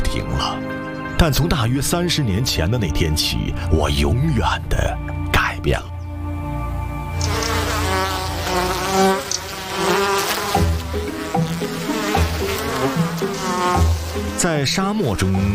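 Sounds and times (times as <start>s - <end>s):
speech: 0.2s - 5.9s, 14.4s - 15.5s
swarm of bees buzzing: 6.7s - 15.5s.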